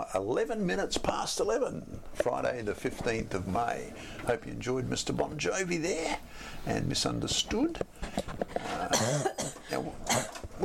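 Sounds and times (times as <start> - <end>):
speech: 0.1 - 10.6
rough throaty coughing fit: 8.7 - 10.4.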